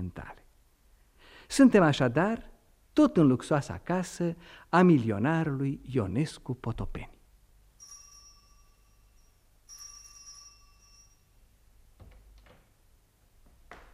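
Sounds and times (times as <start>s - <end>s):
speech: 1.5s - 7.2s
telephone ringing in a luxurious house: 7.8s - 11.4s
sharp clicks and knocks: 12.0s - 12.8s.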